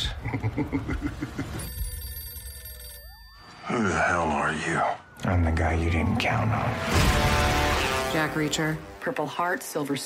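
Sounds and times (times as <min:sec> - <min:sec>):
speech: 0:00.6 - 0:01.4, 0:03.7 - 0:10.0
telephone ringing with rapid bell pulses: 0:01.6 - 0:03.7.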